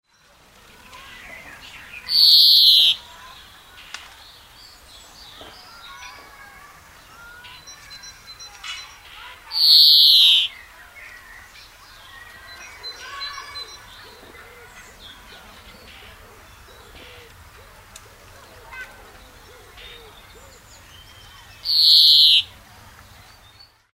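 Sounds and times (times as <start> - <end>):
greenfinch calling: 0.9 - 4.0, 7.1 - 10.7, 11.9 - 22.6.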